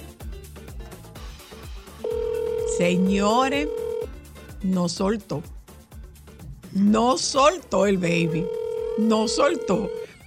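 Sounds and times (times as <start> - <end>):
music: 0.0 - 10.2
telephone ringing tone: 2.0 - 4.1, 8.2 - 10.2
speech: 2.8 - 3.8, 4.6 - 5.6, 6.8 - 10.2.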